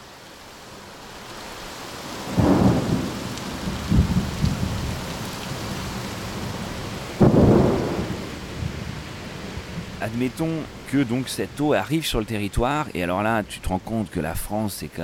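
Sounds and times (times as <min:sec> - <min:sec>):
heavy rain pouring: 0:00.0 - 0:15.0
deep rumbles of thunder: 0:02.2 - 0:10.9
speech: 0:10.0 - 0:15.0.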